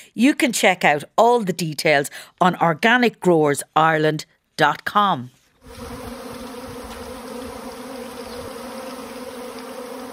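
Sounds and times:
speech: 0.1 - 6.0
many bees buzzing together: 5.6 - 10.1.

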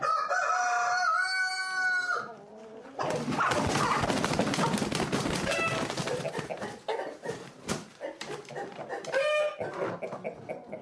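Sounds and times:
rooster crowing: 0.0 - 2.3
chickens clucking: 0.0 - 10.8
farmyard noise: 0.0 - 10.8.

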